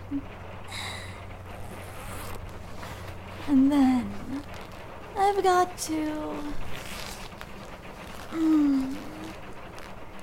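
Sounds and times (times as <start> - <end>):
low steady hum: 0.0 - 10.2
speech: 0.1 - 0.8, 3.5 - 4.2, 5.2 - 6.7, 8.3 - 9.0
faint rustling: 0.7 - 10.2
zipper being slid down on a dress: 1.5 - 3.6, 6.7 - 9.9.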